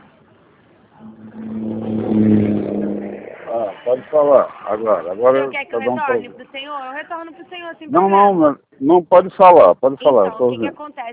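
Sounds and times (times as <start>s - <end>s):
street traffic noise: 0.0s - 11.1s
car engine revving: 1.0s - 5.3s
speech: 3.9s - 11.1s.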